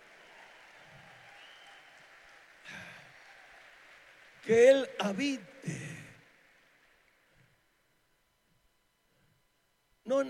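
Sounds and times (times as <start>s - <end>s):
crowd at a Christian gathering applauding: 0.0s - 7.3s
speech: 4.5s - 5.9s.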